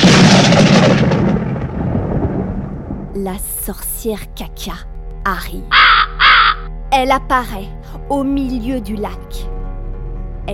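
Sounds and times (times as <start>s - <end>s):
loud thunderclap from a lightning strike: 0.0s - 3.2s
speech: 3.2s - 6.2s, 6.9s - 9.5s.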